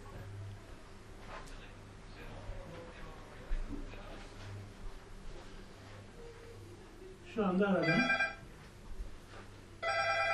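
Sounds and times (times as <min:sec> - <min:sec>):
murmur: 0:00.0 - 0:10.3
mobile phone ringing with a warbling electronic ringtone: 0:07.8 - 0:08.4, 0:09.8 - 0:10.3.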